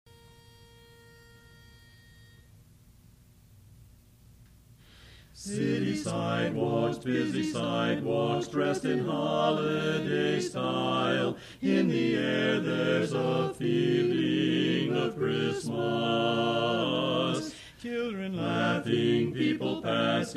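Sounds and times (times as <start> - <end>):
tenor singing a Christmas song learning track: 5.4 - 20.3.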